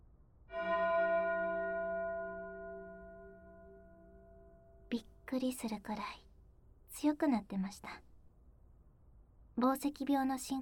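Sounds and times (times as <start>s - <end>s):
distant bell ringing: 0.5s - 4.9s
speech: 4.9s - 6.3s, 6.9s - 8.0s, 9.6s - 10.6s.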